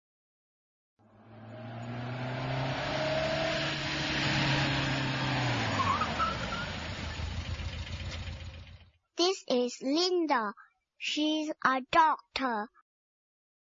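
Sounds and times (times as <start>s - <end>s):
car engine revving while driving away: 1.0s - 9.0s
faint car tire noise and rumble: 1.0s - 9.0s
speech: 9.2s - 12.8s.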